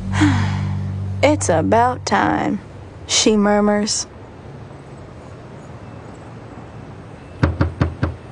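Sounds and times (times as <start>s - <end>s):
speech: 1.2s - 4.1s
firm knocks on a wooden door: 7.4s - 8.2s.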